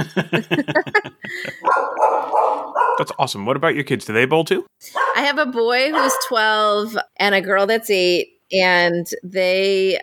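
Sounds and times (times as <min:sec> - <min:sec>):
speech: 0:00.0 - 0:01.5, 0:03.1 - 0:10.0
laughter: 0:00.0 - 0:01.8
doodle dog barking: 0:01.6 - 0:03.2, 0:05.0 - 0:05.2, 0:05.9 - 0:06.3.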